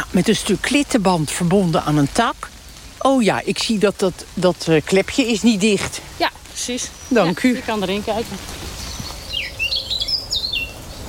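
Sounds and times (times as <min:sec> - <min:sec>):
soft outdoor hiss: 0:00.0 - 0:11.0
speech: 0:00.2 - 0:08.6
blackcap singing: 0:06.6 - 0:11.0.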